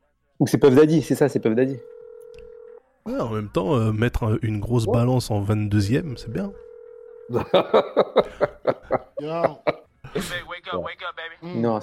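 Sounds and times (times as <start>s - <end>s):
speech: 0.4s - 2.0s, 3.1s - 6.7s, 7.3s - 11.8s
telephone-style melody in a song intro: 0.6s - 2.8s, 6.2s - 7.4s
laughter: 7.3s - 10.5s.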